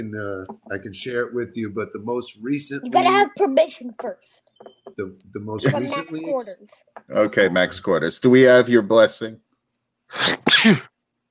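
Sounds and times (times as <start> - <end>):
speech: 0.0 - 9.4, 10.1 - 10.9
sneeze: 10.1 - 11.0.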